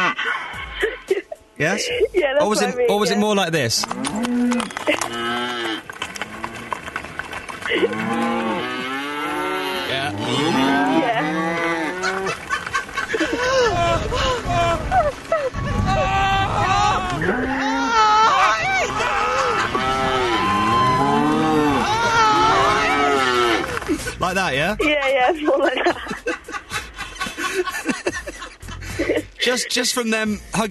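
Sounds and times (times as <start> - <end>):
laughter: 0.0 - 2.8, 7.7 - 8.1, 10.7 - 24.2, 24.8 - 30.0
speech: 1.6 - 5.9, 7.7 - 8.4, 24.2 - 26.1, 29.4 - 30.6
herd of cows mooing: 3.8 - 14.9, 16.4 - 23.8.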